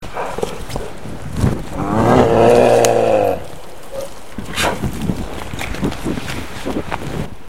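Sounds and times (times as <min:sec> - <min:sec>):
bear roar: 0:01.7 - 0:04.8.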